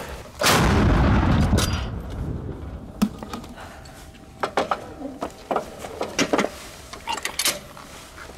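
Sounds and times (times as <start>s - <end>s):
single powerful artillery gun shot booming with deep rumble: 0.4s - 3.0s
metallic clicks and clanks of a gun crew working the gun: 6.0s - 7.7s.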